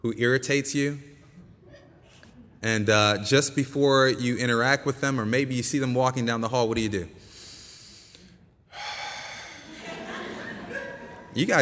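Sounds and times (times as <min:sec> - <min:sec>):
speech: 0:00.0 - 0:01.1, 0:02.6 - 0:07.3, 0:11.4 - 0:11.6
deep breath drawn in through the nose: 0:07.2 - 0:10.0
laughter: 0:09.5 - 0:11.6.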